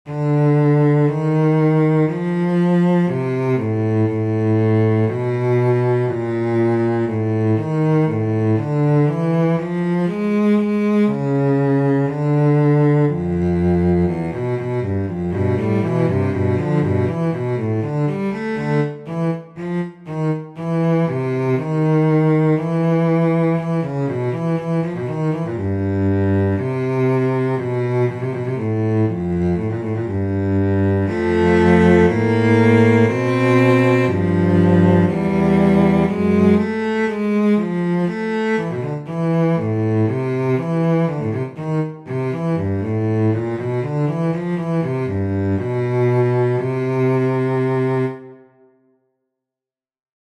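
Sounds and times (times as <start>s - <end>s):
cello: 0.0s - 48.8s.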